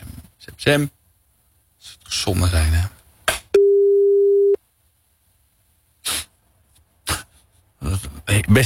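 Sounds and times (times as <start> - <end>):
speech: 0.4 - 1.0, 1.8 - 3.0, 8.3 - 8.6
telephone line tone while calling during a radio broadcast: 3.6 - 4.6.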